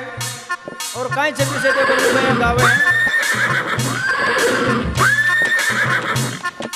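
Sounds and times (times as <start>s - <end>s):
steady rhythmic thumps: 0.0s - 6.7s
speech: 1.0s - 3.6s
mare neighing with a high whinny: 1.5s - 6.5s.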